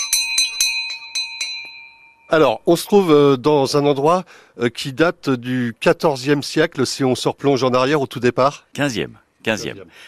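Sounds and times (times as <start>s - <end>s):
small bell ringing at the entrance of a 14th–15th century manor in Laval: 0.0s - 2.5s
speech: 2.3s - 10.0s.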